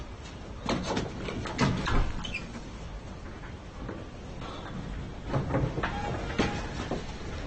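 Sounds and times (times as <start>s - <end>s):
door being opened: 0.6s - 4.3s, 5.1s - 7.3s.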